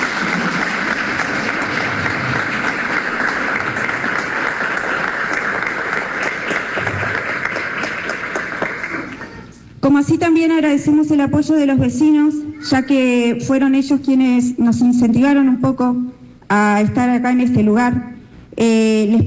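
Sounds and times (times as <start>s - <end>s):
crowd applauding with many hands clapping: 0.0s - 9.6s
speech: 9.8s - 19.2s.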